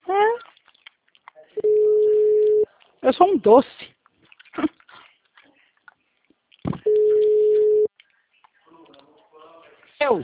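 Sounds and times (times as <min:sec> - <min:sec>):
telephone busy tone after a dropped call: 0:01.6 - 0:02.7, 0:06.9 - 0:07.9
speech: 0:03.2 - 0:03.9.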